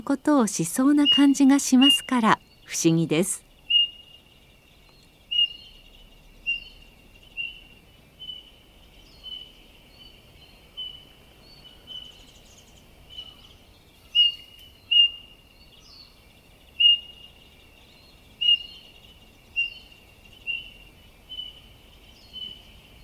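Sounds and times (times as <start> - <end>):
speech: 0.0 - 3.4
Eurasian bullfinches calling to each other in a shrine forest: 0.0 - 4.3, 5.0 - 23.0.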